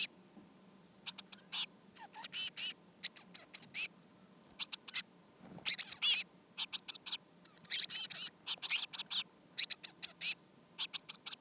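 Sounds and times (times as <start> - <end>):
Eurasian blue tit Cyanistes caeruleus scolding calls: 1.0 - 3.9, 4.6 - 5.0, 5.6 - 11.3.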